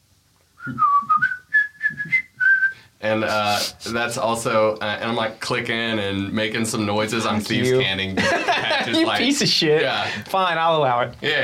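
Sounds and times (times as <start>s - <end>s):
speech: 0.6s - 1.0s, 3.0s - 11.4s
person whistling a tune while doing paperwork: 0.6s - 2.9s
laughter: 8.1s - 10.3s.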